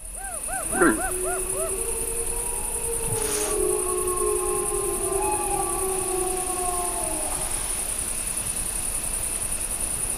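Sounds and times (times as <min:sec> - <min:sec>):
steady insect drone: 0:00.0 - 0:10.1
several wolves howling together: 0:00.1 - 0:08.1
deer alarm bark: 0:00.7 - 0:01.6.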